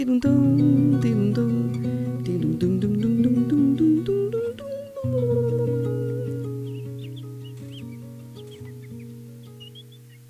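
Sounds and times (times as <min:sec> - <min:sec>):
speech: 0:00.0 - 0:01.5
birds chirping: 0:00.0 - 0:10.2
sustained musical tones: 0:00.4 - 0:10.2.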